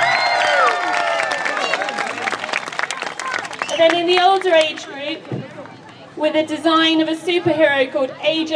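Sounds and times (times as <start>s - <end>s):
excited voices cheering and calling out: 0.0s - 4.7s
audience applause: 0.0s - 4.9s
speech: 3.8s - 5.4s, 6.2s - 8.5s.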